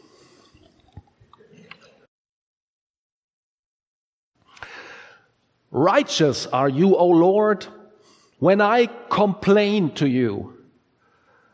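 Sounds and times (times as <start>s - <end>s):
sipping and swallowing water: 0.0s - 2.1s
speech: 5.7s - 7.8s, 8.4s - 10.6s.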